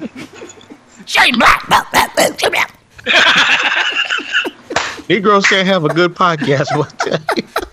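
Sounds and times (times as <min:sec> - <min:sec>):
laughter: 0:00.0 - 0:01.0, 0:03.0 - 0:07.7
speech: 0:01.1 - 0:04.2, 0:05.1 - 0:07.6
dog barking: 0:01.4 - 0:02.6.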